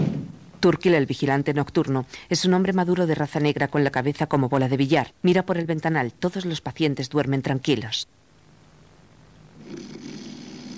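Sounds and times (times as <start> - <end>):
speech: 0.6 - 8.2
sleeping man snoring in a hospital ward: 9.6 - 10.7.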